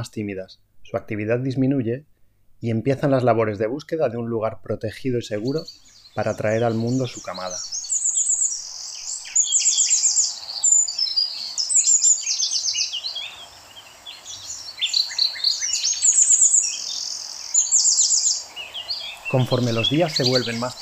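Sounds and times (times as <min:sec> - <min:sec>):
speech: 0:00.0 - 0:07.9, 0:19.3 - 0:20.8
songbirds chirping: 0:00.0 - 0:20.8
songbirds trilling in spring scrubland: 0:04.8 - 0:20.8.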